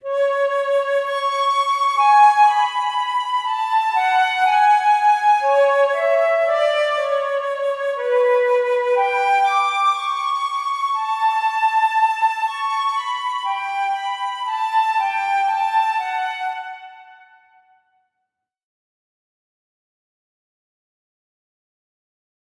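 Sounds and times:
solo flute: 0:00.0 - 0:17.9.

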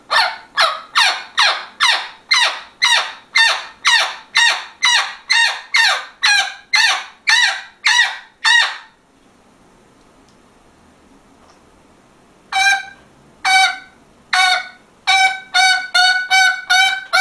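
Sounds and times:
parrot squawking: 0:00.1 - 0:09.0, 0:12.5 - 0:17.2.

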